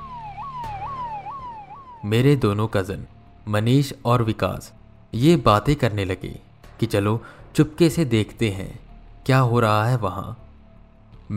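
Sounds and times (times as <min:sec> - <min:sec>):
police siren yelping: 0:00.0 - 0:02.5
speech: 0:02.0 - 0:10.4.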